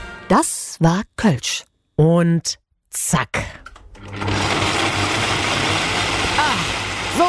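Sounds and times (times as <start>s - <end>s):
speech: 0.3s - 4.5s
kitchen blender running with a grinding motor roar: 4.0s - 7.2s.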